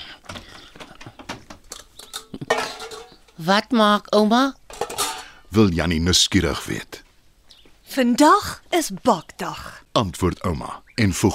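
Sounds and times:
mixing bowls being taken out of a kitchen cupboard: 0.3 - 3.4, 4.7 - 5.4
speech: 3.4 - 4.6, 5.5 - 7.0, 8.0 - 11.3.

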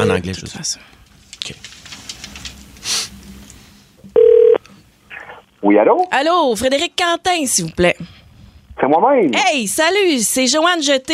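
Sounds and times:
speech: 0.0 - 1.8, 5.6 - 8.2, 8.8 - 11.1
telephone keypad tone: 4.2 - 4.6.

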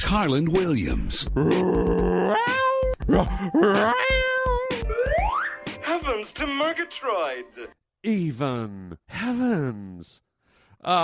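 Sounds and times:
speech: 0.0 - 4.3, 5.9 - 10.2, 10.8 - 11.0
person imitating cat meows: 1.4 - 4.9.

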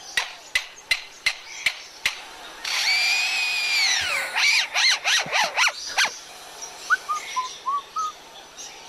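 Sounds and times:
lyrebird mimicking construction site machines with rising mechanical chirps: 0.5 - 8.2
lyrebird mimicking construction site sawing: 2.4 - 8.0.

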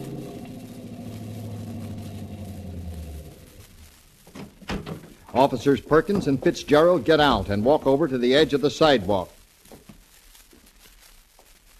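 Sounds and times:
police car engine humming: 0.0 - 3.9
speech: 5.4 - 9.4.

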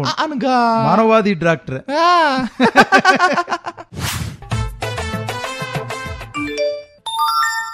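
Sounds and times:
speech: 0.0 - 4.4
laughter: 2.4 - 3.9
electronic message notification chimes from a mobile phone: 6.4 - 7.7.

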